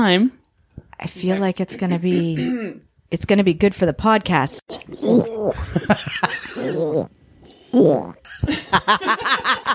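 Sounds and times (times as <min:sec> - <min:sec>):
speech: 0:00.0 - 0:00.4, 0:01.0 - 0:09.7
person imitating a dog trying to vomit: 0:02.2 - 0:02.9, 0:04.8 - 0:05.8, 0:06.4 - 0:08.3
laughter: 0:05.6 - 0:06.8, 0:08.4 - 0:09.7.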